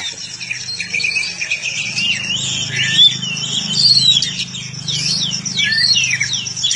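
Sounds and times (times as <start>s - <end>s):
Oriental magpie-robin song of quick descending whistled slurs and chirps: 0.0s - 6.7s.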